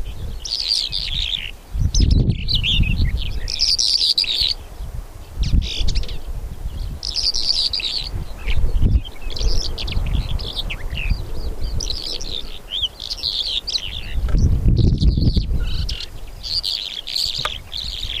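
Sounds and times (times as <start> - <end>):
Bimaculated Lark giving scratchy chirping phrases: 0.0 - 18.1.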